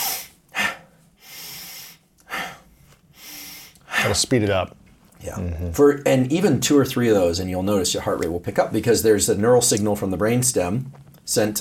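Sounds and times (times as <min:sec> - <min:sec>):
forceful breathing through the nose and mouth: 0:00.0 - 0:04.3
speech: 0:04.0 - 0:11.5.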